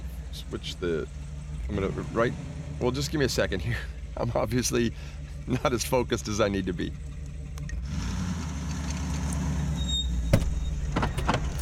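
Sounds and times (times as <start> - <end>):
road traffic passing: 0.0 - 11.5
speech: 0.5 - 7.1
knocks and clatters: 10.3 - 11.5.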